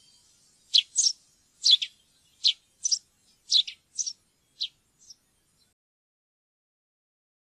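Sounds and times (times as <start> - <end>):
Eurasian tree sparrow chirps: 0.0 - 5.8.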